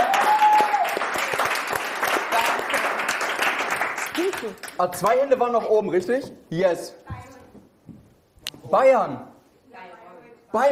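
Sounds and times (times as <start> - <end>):
audience applause: 0.0 - 4.8
speech: 4.4 - 7.0, 8.7 - 9.3.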